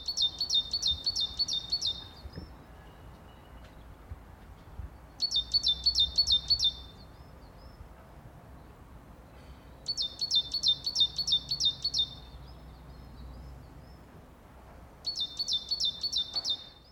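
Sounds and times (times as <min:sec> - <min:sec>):
unidentified bird species singing in a garden: 0:00.0 - 0:03.9, 0:05.0 - 0:08.0, 0:09.7 - 0:14.2, 0:15.0 - 0:16.9
soft outdoor hum in a garden: 0:00.0 - 0:16.9.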